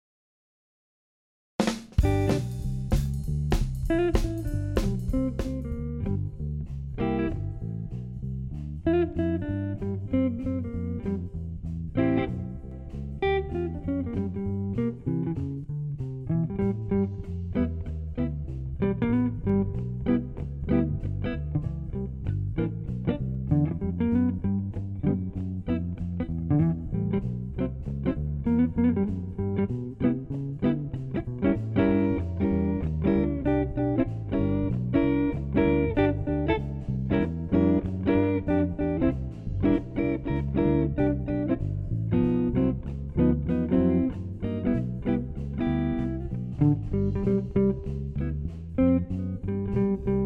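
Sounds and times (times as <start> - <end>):
jazzy swing blues play-along backing track: 1.9 - 50.2.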